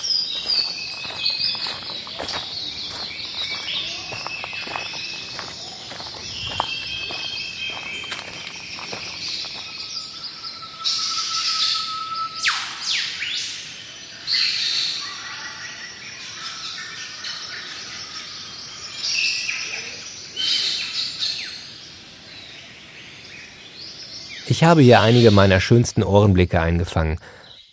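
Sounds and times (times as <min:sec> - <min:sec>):
steady insect-like hiss: 0:00.0 - 0:11.9
dense chorus of birds singing and chirping before sunrise by a lake: 0:00.0 - 0:27.7
speech: 0:24.6 - 0:27.4.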